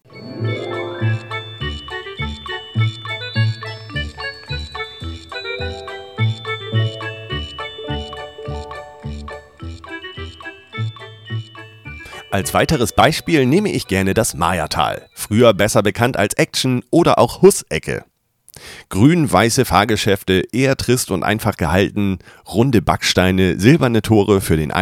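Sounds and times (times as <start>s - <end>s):
theme park entrance area instrumental background music: 0.0s - 15.5s
speech: 12.4s - 24.7s.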